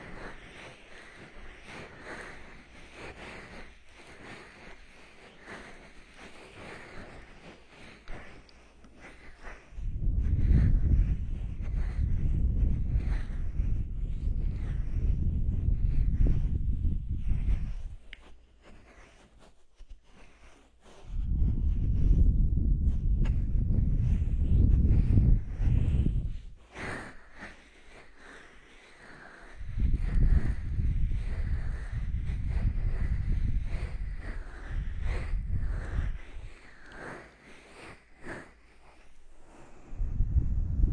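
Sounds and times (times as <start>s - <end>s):
rubbing sounds: 0.0s - 40.0s
faint scratchy detail: 0.0s - 40.9s.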